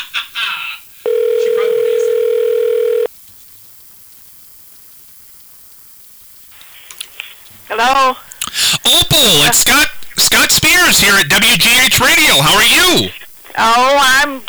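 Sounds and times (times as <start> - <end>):
faint telephone line hiss: 1.0 - 3.1, 4.6 - 14.4
telephone keypad beeps: 1.1 - 3.1
speech: 7.8 - 14.4.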